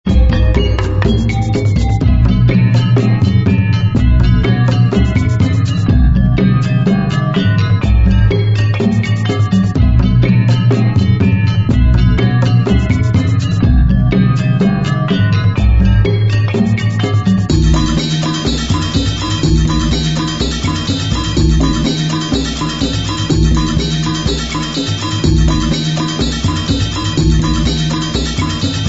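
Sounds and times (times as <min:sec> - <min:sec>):
gamelan music: 0:00.1 - 0:28.8.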